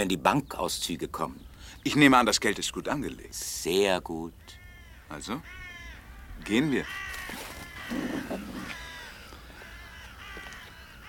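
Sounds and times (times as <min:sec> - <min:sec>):
speech: 0:00.0 - 0:05.6, 0:06.4 - 0:08.8
ravens cawing: 0:04.4 - 0:11.0.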